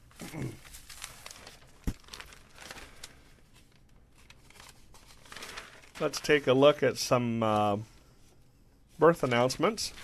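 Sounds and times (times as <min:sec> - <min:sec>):
newspaper pages rustling and crinkling: 0:00.6 - 0:06.8, 0:09.0 - 0:10.0
speech: 0:06.0 - 0:07.9, 0:09.0 - 0:10.0.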